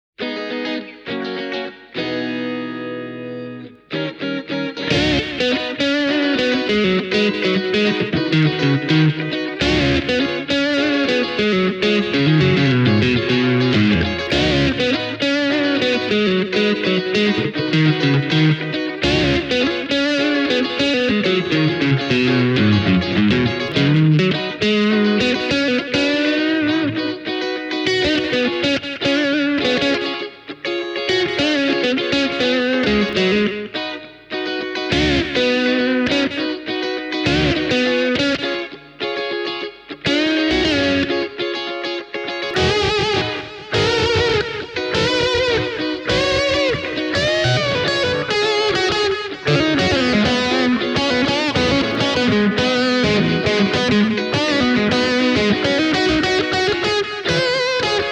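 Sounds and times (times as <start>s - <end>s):
ESP LTD MM 30 guitars: 0.2s - 58.1s.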